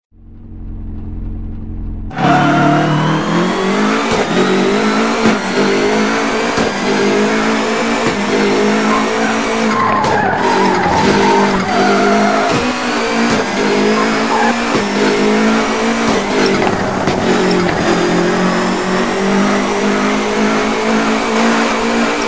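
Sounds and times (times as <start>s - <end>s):
Subaru Impreza Prodrive car engine: 0.0s - 22.2s.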